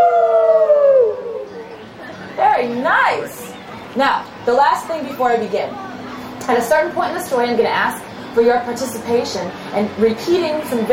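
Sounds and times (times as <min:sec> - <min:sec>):
audience howling together in imitation of a wolf: 0:00.0 - 0:01.8
speech: 0:04.0 - 0:10.9.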